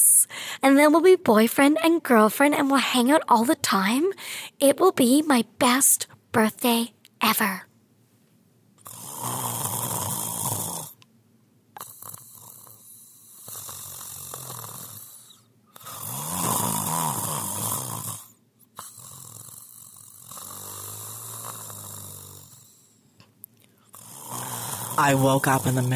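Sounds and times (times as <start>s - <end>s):
speech: 0.6s - 7.7s, 25.0s - 25.9s
man snoring while asleep: 8.8s - 11.0s, 11.8s - 23.0s, 23.9s - 25.9s.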